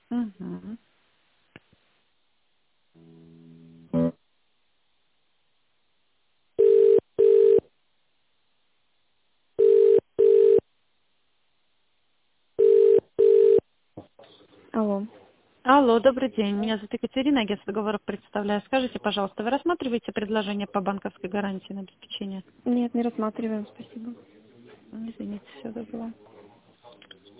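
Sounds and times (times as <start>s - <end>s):
speech: 0.1s - 1.0s, 14.8s - 26.3s
telephone ringback tone while a call is transferred: 6.6s - 7.6s, 9.6s - 10.6s, 12.6s - 13.6s.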